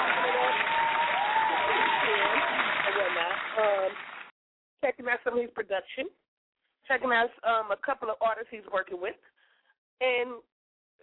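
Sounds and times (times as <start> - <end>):
people whooping and cheering: 0.0 - 4.1
crowd applauding a guest on a radio show: 0.0 - 4.3
speech: 5.0 - 6.2, 6.9 - 9.3, 10.0 - 11.0.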